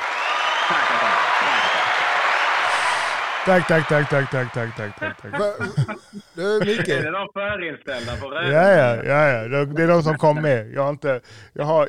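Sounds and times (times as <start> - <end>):
faint cheering voices: 0.0 - 5.8
small group applauding: 0.0 - 6.0
laughter: 2.7 - 7.2, 7.9 - 8.8, 9.7 - 10.6
speech: 3.4 - 11.8.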